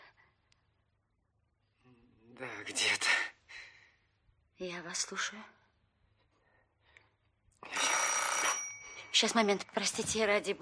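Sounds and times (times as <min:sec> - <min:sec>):
speech: 0:02.4 - 0:03.0, 0:04.6 - 0:05.6, 0:09.2 - 0:10.6
telephone bell ringing: 0:07.7 - 0:09.4.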